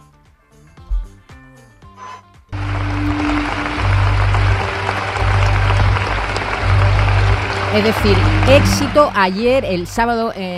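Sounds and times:
music: 0:00.0 - 0:10.5
large audience applause after a film screening: 0:02.6 - 0:10.0
speech: 0:07.8 - 0:10.5.

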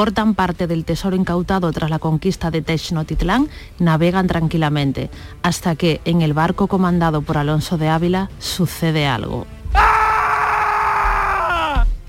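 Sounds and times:
speech: 0:00.0 - 0:09.8
man screaming aboard a ship: 0:09.7 - 0:11.9.

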